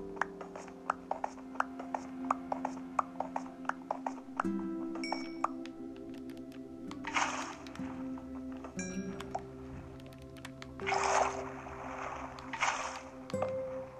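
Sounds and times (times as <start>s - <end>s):
clicks: 0.1s - 11.4s
splashy whooshes of water being placed in a video game: 6.9s - 10.0s, 10.8s - 13.4s.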